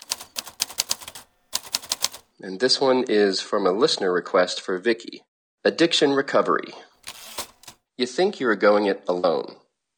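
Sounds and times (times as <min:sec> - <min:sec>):
typewriter keystrokes: 0:00.0 - 0:02.2, 0:07.1 - 0:07.8
speech: 0:02.4 - 0:06.9, 0:08.0 - 0:09.6.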